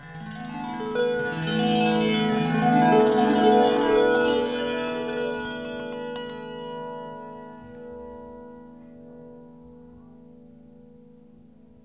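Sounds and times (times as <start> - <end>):
tenor Tao lyre: 0.0 - 9.5.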